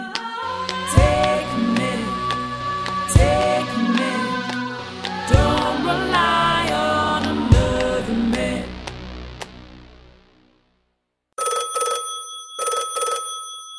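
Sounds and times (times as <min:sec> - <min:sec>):
music track: 0:00.0 - 0:10.9
telephone bell ringing with an incoming call: 0:11.4 - 0:13.7.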